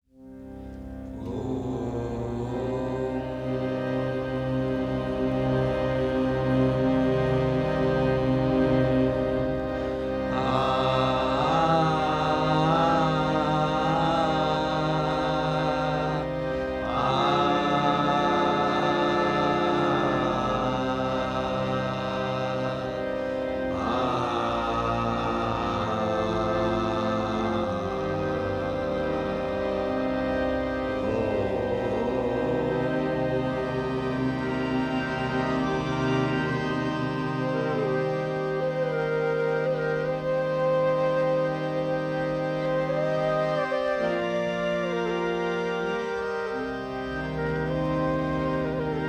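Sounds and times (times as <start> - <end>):
person chanting om: 0.8 - 48.9.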